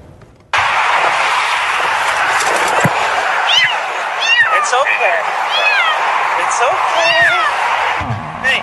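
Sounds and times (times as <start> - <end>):
loud constant roar of passing highway traffic: 0.0 - 8.6
frightened kitten stuck in a highway median meowing: 3.5 - 4.7, 5.5 - 6.0, 7.0 - 7.5.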